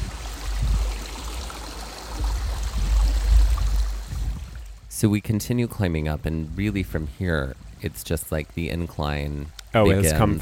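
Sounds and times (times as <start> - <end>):
rushing water of waterfalls roaring: 0.0 - 10.4
speech: 5.0 - 10.4.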